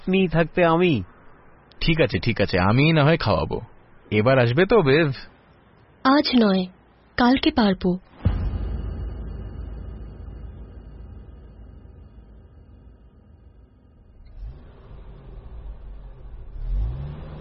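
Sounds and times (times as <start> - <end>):
speech: 0.1 - 1.1, 1.8 - 5.3, 6.0 - 8.1
car engine running and revving as the car turns and accelerates: 13.4 - 17.3.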